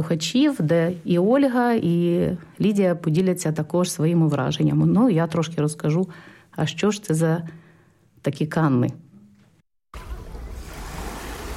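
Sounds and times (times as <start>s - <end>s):
speech: 0.0s - 7.6s, 8.2s - 9.0s
sea surf washing against the shore: 10.0s - 11.5s.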